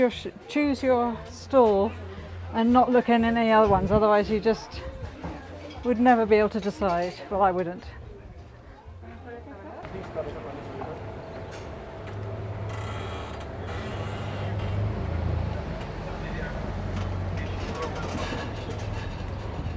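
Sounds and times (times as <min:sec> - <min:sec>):
speech: 0:00.0 - 0:04.9, 0:05.8 - 0:08.0
faint street voices: 0:00.0 - 0:19.7
rickety police car passing with engine drone and mechanical clatter: 0:09.8 - 0:19.7.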